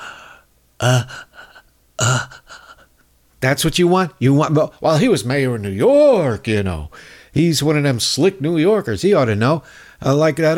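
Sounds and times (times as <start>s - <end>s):
voice imitating a freshly caught fish gasping for oxygen: 0.0s - 3.0s
speech: 0.8s - 1.3s, 3.4s - 10.5s.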